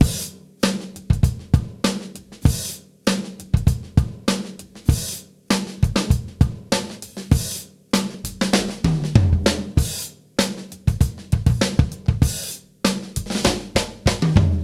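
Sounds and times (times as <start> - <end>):
boombap drum loops with back beat: 0.0 - 14.6.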